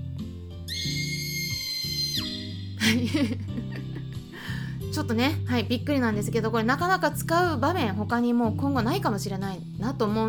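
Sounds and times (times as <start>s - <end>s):
shrill sustained scream sound effect: 0.7s - 2.8s
speech: 2.2s - 4.0s, 5.0s - 10.2s
laughter: 2.8s - 4.4s.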